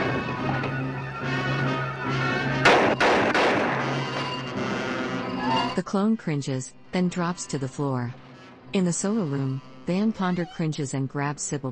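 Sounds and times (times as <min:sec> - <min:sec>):
steady droning hum of a decelerating craft: 0:00.0 - 0:11.6
gunshots fired at a clone: 0:02.6 - 0:04.1
speech: 0:05.8 - 0:11.6.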